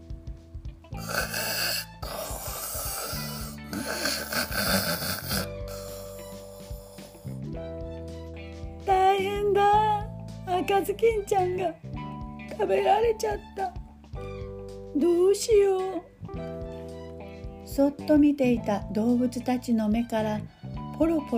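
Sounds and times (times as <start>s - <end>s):
light musical backing: 0.0s - 21.3s
sleeping wolf snoring loudly: 1.0s - 7.5s
speech: 10.7s - 11.9s, 12.6s - 13.7s, 15.0s - 16.1s, 17.8s - 21.3s.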